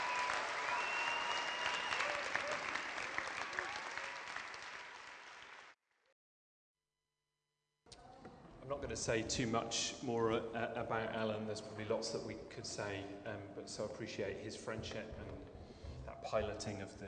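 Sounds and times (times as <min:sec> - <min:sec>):
crowd applauding loudly: 0:00.0 - 0:05.8
speech: 0:08.7 - 0:15.4, 0:16.2 - 0:17.0.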